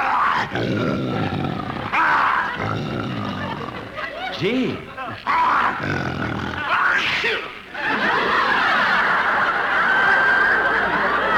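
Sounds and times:
captive lion roaring: 0:00.0 - 0:04.0, 0:05.4 - 0:06.7
speech: 0:00.4 - 0:03.7, 0:04.3 - 0:08.4
laughter: 0:00.8 - 0:06.7, 0:07.7 - 0:11.3.

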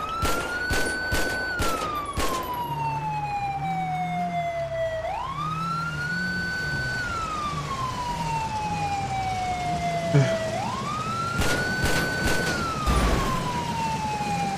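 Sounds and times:
rapid gunfire at a car's smoking engine: 0:00.0 - 0:02.5, 0:11.4 - 0:13.1
police siren wailing up and down: 0:00.0 - 0:14.5.

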